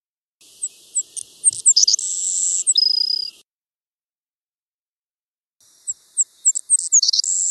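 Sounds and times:
male Savannah Sparrow song: 0.4 - 3.4, 5.6 - 7.4.

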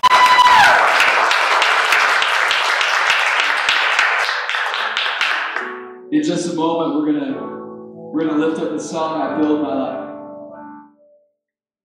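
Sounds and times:
large crowd applauding: 0.0 - 5.7
speech: 6.2 - 10.0.

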